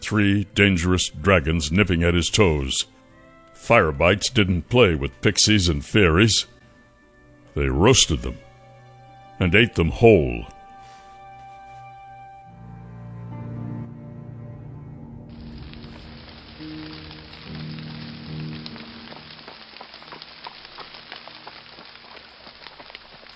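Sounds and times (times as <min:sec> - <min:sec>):
speech: 0:00.1 - 0:03.0, 0:03.7 - 0:06.6, 0:07.6 - 0:08.4, 0:09.4 - 0:10.6
heavy rain pouring: 0:15.3 - 0:23.3.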